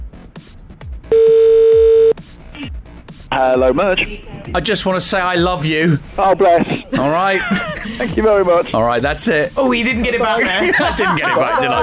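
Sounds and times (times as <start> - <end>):
phone ringback tone while a call is placed: 1.1 - 2.1
speech: 3.4 - 11.8
laughter: 6.3 - 8.7, 10.0 - 11.8.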